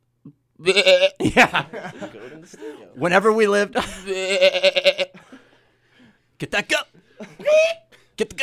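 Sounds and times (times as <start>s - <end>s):
speech: 0.2s - 5.2s, 6.4s - 6.9s, 7.5s - 8.4s
person imitating goat bleat: 0.6s - 1.3s, 3.8s - 5.1s
laughter: 0.6s - 8.1s.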